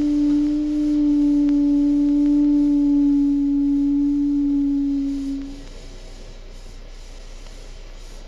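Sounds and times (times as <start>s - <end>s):
low moaning whistle from a cold steam-car burner: 0.0s - 6.1s
soft hiss: 0.0s - 8.2s.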